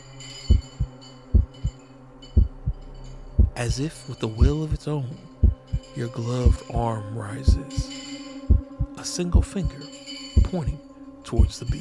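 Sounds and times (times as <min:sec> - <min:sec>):
heartbeat pounding: 0:00.5 - 0:01.8, 0:02.4 - 0:02.8, 0:03.4 - 0:07.9, 0:08.5 - 0:09.8, 0:10.4 - 0:10.8, 0:11.4 - 0:11.8
speech: 0:03.6 - 0:05.3, 0:06.0 - 0:08.0, 0:09.0 - 0:09.9, 0:10.5 - 0:11.8.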